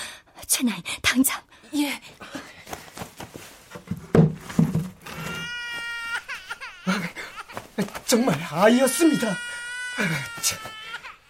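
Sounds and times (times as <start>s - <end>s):
speech: 0.5s - 2.4s, 8.1s - 11.0s
rustling: 2.2s - 5.4s
thumps: 3.7s - 5.4s
newborn baby crying weakly in thin wavering wails: 5.1s - 11.2s.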